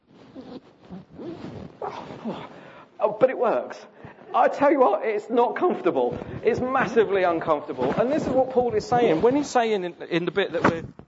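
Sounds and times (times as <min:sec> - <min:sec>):
coat zipper being done up: 0:00.0 - 0:02.6, 0:06.1 - 0:11.0
fabric rustling: 0:00.0 - 0:11.0
speech: 0:01.9 - 0:11.0.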